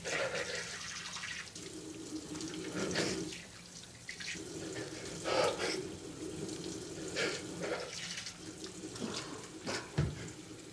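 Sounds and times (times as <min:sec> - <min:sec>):
water running from a sink faucet: 0:00.0 - 0:10.7.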